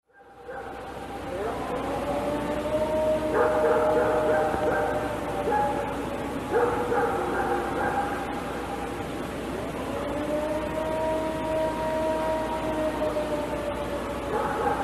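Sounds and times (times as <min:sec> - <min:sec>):
dog barking: 0:00.1 - 0:00.9, 0:03.3 - 0:05.9, 0:06.5 - 0:08.4, 0:14.3 - 0:14.8
droning moan: 0:00.1 - 0:14.8.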